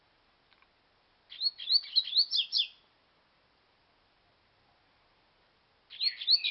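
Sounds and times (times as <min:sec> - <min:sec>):
double-collared seedeater chirping song: 0:01.3 - 0:02.8, 0:05.9 - 0:06.4.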